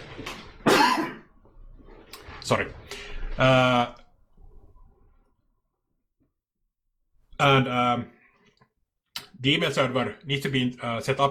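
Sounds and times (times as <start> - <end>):
single loud cough: 0.6 - 1.3
speech: 2.5 - 4.0, 7.4 - 8.2, 9.4 - 11.2.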